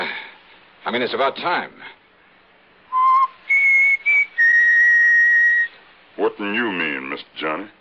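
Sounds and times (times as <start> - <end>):
speech: 0.9 - 2.0, 6.2 - 7.7
person whistling four clear notes: 2.9 - 5.8.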